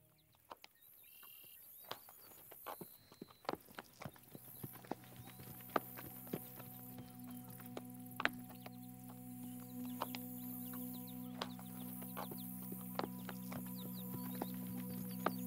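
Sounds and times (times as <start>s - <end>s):
faint birdsong: 0.0s - 15.4s
horse hooves clip-clopping at walking pace: 0.0s - 15.4s
steady low hum: 4.2s - 15.4s.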